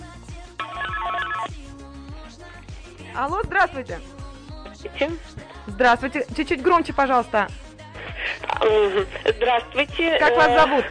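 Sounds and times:
quiet music bed: 0:00.0 - 0:10.8
telephone ringing as a listener calls into a studio: 0:00.6 - 0:01.5
speech: 0:03.2 - 0:04.2, 0:04.8 - 0:07.6, 0:08.6 - 0:10.8.

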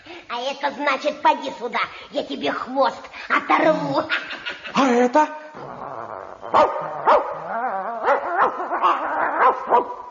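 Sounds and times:
speech: 0:00.3 - 0:05.4, 0:06.5 - 0:07.0, 0:09.6 - 0:10.0
dog whining and yelping: 0:05.6 - 0:09.9
dog barking: 0:06.6 - 0:07.4, 0:09.4 - 0:10.0.

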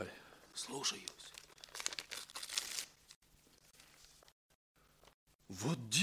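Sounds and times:
speech: 0:00.6 - 0:01.4, 0:05.5 - 0:06.0
paper packet crinkling and tearing open: 0:01.0 - 0:03.2.

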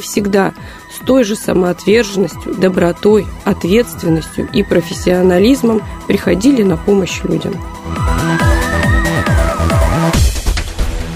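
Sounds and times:
speech: 0:00.0 - 0:08.1
fire engine siren wailing: 0:07.8 - 0:10.1.

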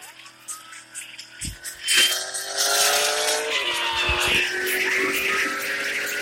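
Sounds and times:
vehicle siren switched on while driving: 0:01.6 - 0:06.1.

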